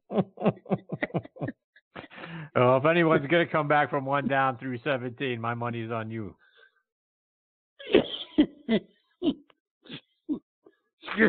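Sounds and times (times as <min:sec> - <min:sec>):
laughter: 0:00.1 - 0:03.4
speech: 0:02.6 - 0:06.4, 0:08.7 - 0:08.9
harsh raspy coughing fit: 0:07.8 - 0:08.7.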